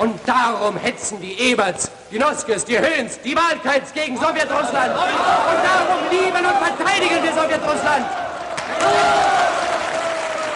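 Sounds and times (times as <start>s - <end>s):
speech: 0.0s - 9.4s
crowd applauding and cheering in a film: 7.0s - 10.5s.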